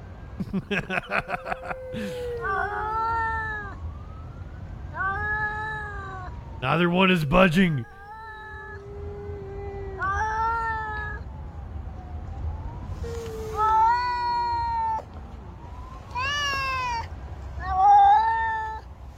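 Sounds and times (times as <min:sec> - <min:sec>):
laughter: 0:00.4 - 0:02.3
speech: 0:00.4 - 0:03.2, 0:06.6 - 0:08.0
two cats yowling at each other: 0:00.8 - 0:03.9, 0:04.9 - 0:11.2, 0:13.0 - 0:15.1, 0:16.1 - 0:18.9.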